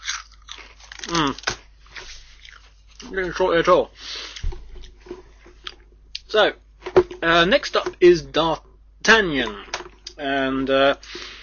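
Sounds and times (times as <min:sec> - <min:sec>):
salty crisps being crunched and chewed: 0:00.0 - 0:03.4
speech: 0:03.1 - 0:04.1, 0:06.3 - 0:06.6, 0:07.2 - 0:11.2.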